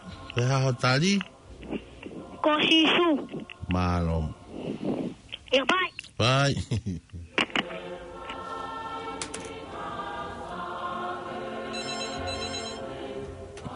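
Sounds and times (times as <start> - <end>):
speech: 0.4 - 7.1
telephone ringing in double bursts: 11.7 - 12.9.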